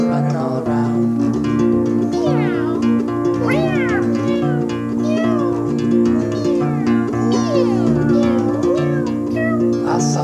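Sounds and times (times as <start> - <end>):
musical backing: 0.0 - 10.2
cat meowing: 2.1 - 10.1.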